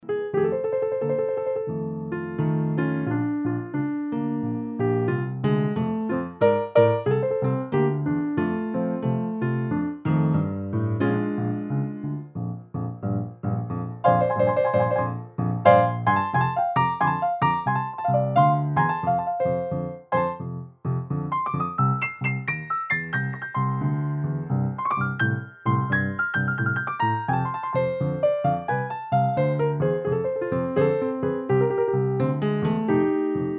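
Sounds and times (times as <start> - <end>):
Bluthner piano: 0.0 - 33.5.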